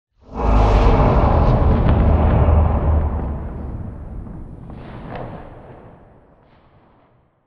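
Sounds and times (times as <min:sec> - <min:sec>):
close exterior explosion rumble with wash tail: 0:00.2 - 0:06.2.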